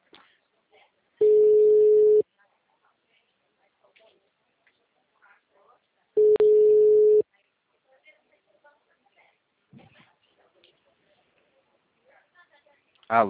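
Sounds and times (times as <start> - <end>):
telephone ringback tone while placing a call: 1.2 - 2.2, 6.2 - 7.2.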